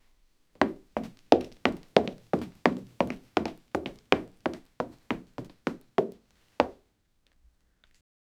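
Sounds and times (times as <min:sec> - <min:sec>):
high heels walking: 0:00.6 - 0:06.8.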